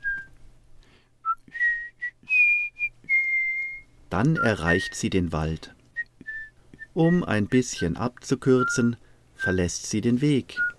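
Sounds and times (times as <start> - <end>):
person whistling a short cheerful tune: 0.0 - 0.4, 1.2 - 5.0, 6.0 - 8.0, 8.6 - 9.7, 10.5 - 10.7
speech: 4.1 - 5.8, 7.0 - 10.7.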